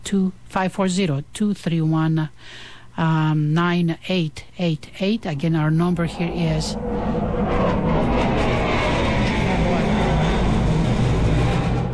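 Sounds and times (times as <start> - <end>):
speech: 0.1 - 7.2
large airplane roaring overhead: 5.3 - 11.9.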